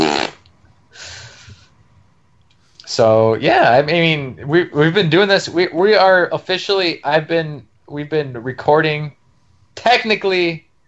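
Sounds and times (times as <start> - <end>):
fart: 0.0 - 0.5
speech: 3.0 - 9.2, 9.8 - 10.7.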